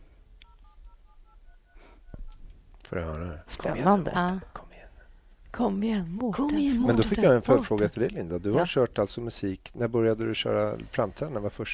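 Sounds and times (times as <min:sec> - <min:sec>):
low noise: 0:00.0 - 0:11.7
telephone keypad tones as a number is dialed: 0:00.4 - 0:02.4
speech: 0:02.9 - 0:04.6, 0:05.5 - 0:11.7.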